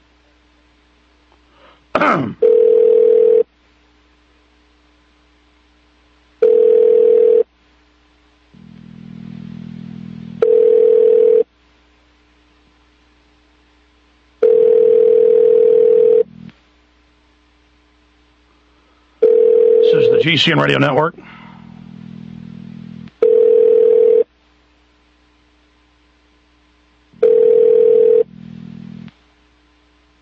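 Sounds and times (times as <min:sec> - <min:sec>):
speech: 0:02.0 - 0:02.5, 0:20.3 - 0:21.3
telephone ringback tone over a line during a call to the U.S. State Department: 0:02.4 - 0:03.5, 0:06.4 - 0:07.5, 0:10.3 - 0:11.4, 0:14.4 - 0:16.3, 0:19.2 - 0:20.8, 0:23.2 - 0:24.3, 0:27.2 - 0:28.3
low buzzing hum: 0:02.5 - 0:30.2.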